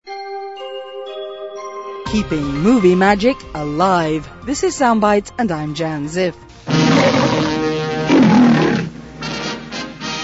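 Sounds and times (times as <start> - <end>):
speech: 2.1 - 6.5
lion roaring: 6.7 - 9.0.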